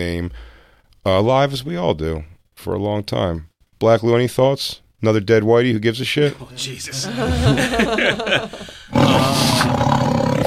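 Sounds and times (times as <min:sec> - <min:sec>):
speech: 0:00.0 - 0:10.0
laughter: 0:06.3 - 0:09.7
loud tiger roaring with a rough rumbling growl: 0:08.9 - 0:10.4.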